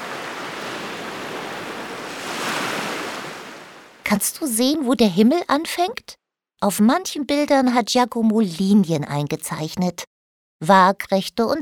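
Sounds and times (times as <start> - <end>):
wave breaking: 0.0 - 4.0
ocean surf rushing: 0.0 - 4.1
speech: 4.1 - 11.6.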